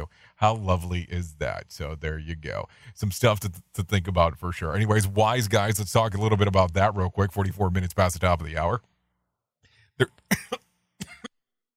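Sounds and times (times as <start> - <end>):
speech: 0.4 - 8.9, 10.0 - 10.6
harsh throaty coughing fit: 10.0 - 11.4.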